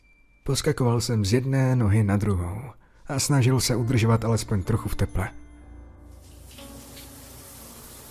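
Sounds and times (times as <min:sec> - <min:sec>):
speech: 0:00.5 - 0:05.4
tap water filling a bathtub, behind a door: 0:06.2 - 0:08.0.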